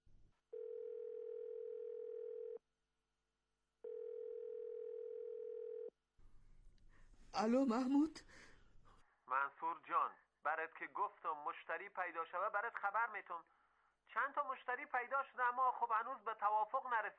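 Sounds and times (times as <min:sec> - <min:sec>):
telephone ringing tones: 0:00.5 - 0:02.6, 0:03.9 - 0:05.9
speech: 0:07.4 - 0:08.5, 0:09.4 - 0:13.5, 0:14.1 - 0:17.1.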